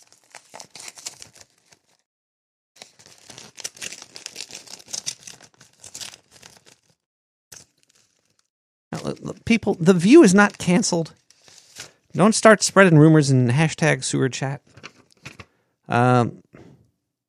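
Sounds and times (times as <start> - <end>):
paper envelope being torn open: 0.0 - 2.0, 2.8 - 9.2, 9.8 - 12.0
speech: 9.0 - 11.2, 12.2 - 14.8, 15.9 - 16.4.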